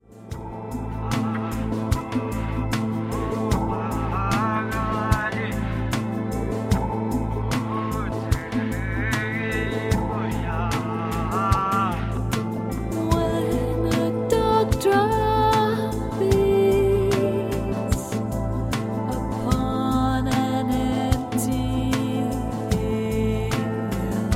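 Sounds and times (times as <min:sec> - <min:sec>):
dark drum: 0:00.0 - 0:24.3.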